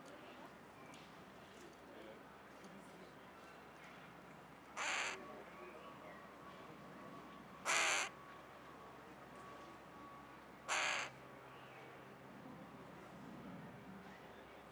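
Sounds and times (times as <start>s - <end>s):
carrion crow calling with rasping caws: 4.8s - 5.2s, 7.7s - 8.1s, 10.7s - 11.1s.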